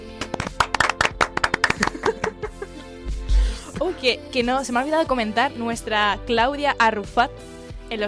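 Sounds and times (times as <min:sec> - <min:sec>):
small group clapping: 0:00.1 - 0:02.4
laughter: 0:01.7 - 0:02.8
speech: 0:03.8 - 0:08.0.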